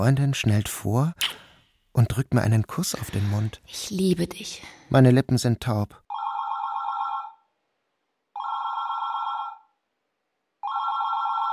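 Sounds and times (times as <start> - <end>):
speech: 0.0 - 1.4, 2.0 - 6.0
telephone bell ringing: 6.1 - 7.5, 8.3 - 9.8, 10.6 - 11.5.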